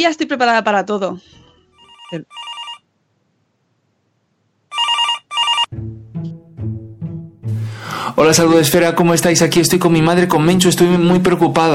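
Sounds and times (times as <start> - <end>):
speech: 0.0 - 1.4, 2.1 - 2.4, 8.2 - 11.7
telephone ringing with an incoming call: 1.7 - 2.9, 4.7 - 5.7.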